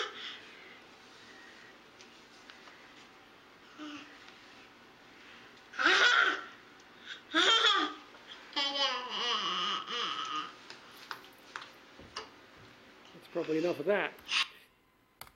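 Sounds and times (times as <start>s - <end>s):
toddler babbling and giggling at a mirror: 7.3s - 10.6s
speech: 13.4s - 14.4s.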